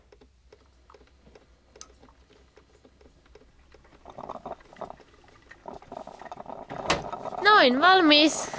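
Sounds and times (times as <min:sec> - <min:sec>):
coffee brewing in a kitchen: 0:00.0 - 0:08.5
speech: 0:07.6 - 0:08.5.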